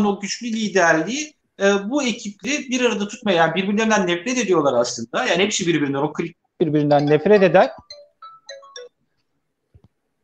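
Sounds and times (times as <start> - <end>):
speech: 0.0 - 8.0
phone ringtone of bright electronic tones: 7.0 - 9.1.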